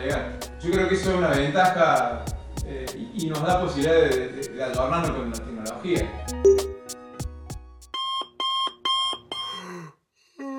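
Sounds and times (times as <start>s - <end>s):
speech: 0.0s - 6.6s
electronic alarm clock ringing: 8.0s - 9.5s.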